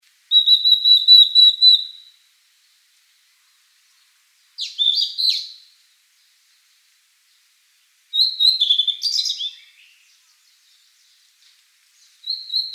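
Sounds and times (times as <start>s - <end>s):
blue-and-white flycatcher song: 0.3s - 2.2s, 4.6s - 5.7s, 8.1s - 10.8s, 12.0s - 12.7s.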